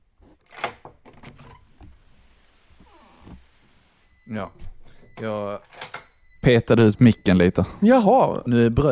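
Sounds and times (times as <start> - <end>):
door clattering and creaking open: 0.4 - 2.0, 2.8 - 7.2
rain falling outside: 1.9 - 4.1
speech: 4.3 - 5.8, 6.4 - 8.9.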